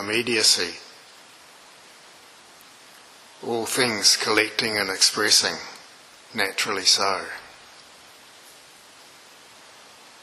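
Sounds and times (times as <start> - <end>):
speech: 0.0 - 0.9, 3.4 - 5.7, 6.3 - 7.4
soft steady rain in the evening: 0.0 - 10.2.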